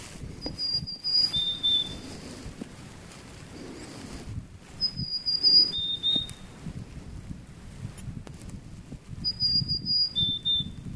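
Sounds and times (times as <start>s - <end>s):
marsh tit two-part call: 0.4s - 2.2s, 4.8s - 6.5s, 9.2s - 10.8s.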